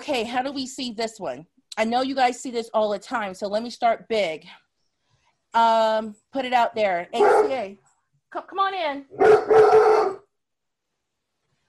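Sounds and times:
speech: 0.0 - 4.6, 5.5 - 10.1
dog howling: 9.2 - 10.2.

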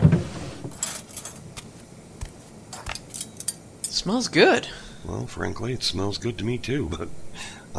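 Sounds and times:
metal silverware clinking as a drawer is rummaged through: 0.7 - 1.5, 2.7 - 4.0
speech: 4.0 - 7.7.

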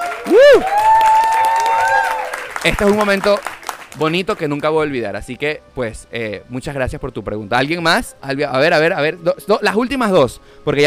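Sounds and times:
live audience yelling: 0.0 - 2.4
live audience whooping: 0.0 - 3.5
live audience clapping: 0.0 - 4.8
speech: 0.3 - 0.8, 2.6 - 10.8.

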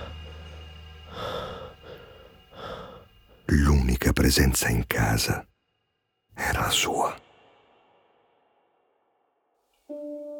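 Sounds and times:
man breathing heavily and breathlessly: 0.0 - 3.5
speech: 3.5 - 5.5, 6.4 - 7.2.

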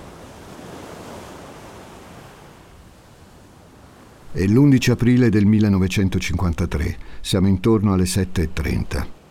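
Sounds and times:
sea waves washing onto a sandy beach: 0.0 - 7.3
speech: 4.3 - 9.2.

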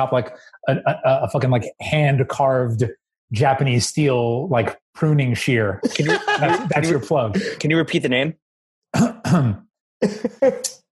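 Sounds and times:
speech: 0.0 - 10.8
laughter: 0.1 - 1.4, 5.8 - 7.8
throat clearing from phlegm after drinking beer: 0.7 - 1.4, 9.0 - 9.6.

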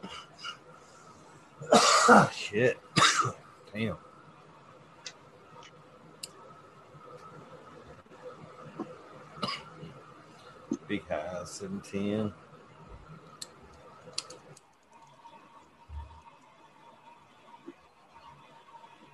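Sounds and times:
quiet hum: 0.0 - 19.1
harsh raspy coughs: 1.6 - 2.4, 3.0 - 3.4
speech: 2.1 - 4.1, 10.9 - 12.4
faint clicks: 13.3 - 16.6.

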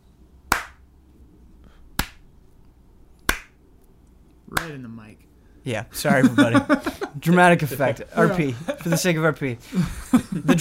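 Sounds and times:
slow loud hand claps: 0.5 - 0.9, 2.0 - 2.2, 3.3 - 3.6
speech: 4.5 - 10.5
laughter: 6.0 - 10.5.

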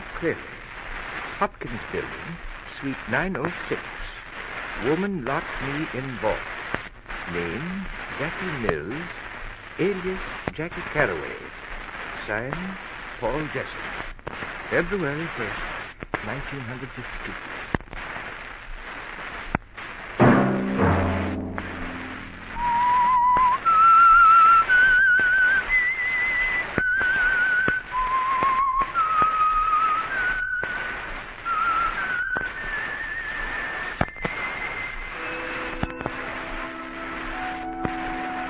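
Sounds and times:
speech: 0.2 - 0.6, 1.4 - 4.0, 4.8 - 6.5, 7.3 - 9.2, 9.8 - 11.6, 12.2 - 14.1, 14.7 - 17.6
soft instrumental accompaniment: 20.2 - 23.4, 35.2 - 38.4
lone whistler whistling a slow wavering melody: 22.5 - 30.6, 31.5 - 35.7.

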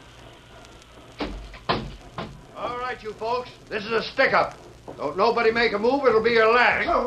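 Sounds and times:
door bursting open with a bang: 1.2 - 2.5
heavy thud: 1.2 - 2.5
speech: 2.9 - 7.0.

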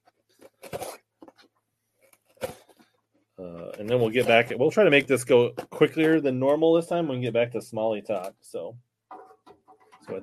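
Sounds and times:
scissors cutting packing tape on a box: 0.4 - 1.0
speech: 3.4 - 8.9, 10.1 - 10.2.

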